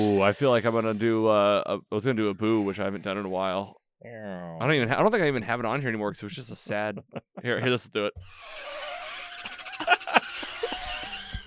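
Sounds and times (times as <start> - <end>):
speech: 0.0 - 8.8
laughter: 6.4 - 8.1, 9.4 - 11.4
car brakes screeching sound effect: 8.3 - 11.4.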